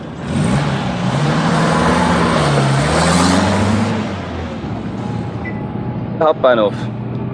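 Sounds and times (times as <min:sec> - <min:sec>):
taxi engine rumbling while driving and accelerating: 0:00.0 - 0:07.3
speech: 0:06.2 - 0:07.0.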